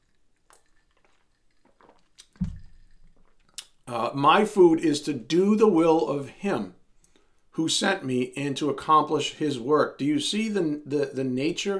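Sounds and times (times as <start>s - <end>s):
gulp: 0.0s - 3.9s
person sipping a drink: 0.0s - 3.9s
wet mouth sounds: 0.0s - 4.0s
dull low thump: 2.4s - 2.8s
speech: 3.9s - 6.8s, 7.6s - 11.7s.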